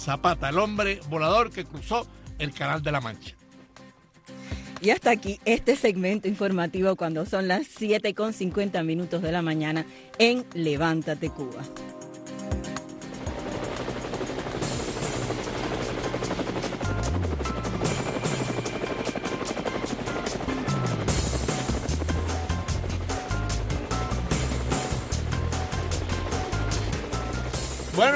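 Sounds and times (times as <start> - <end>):
speech: 0.0 - 3.4, 4.8 - 12.0
helicopter rotor chopping over a roaring engine: 13.0 - 28.1.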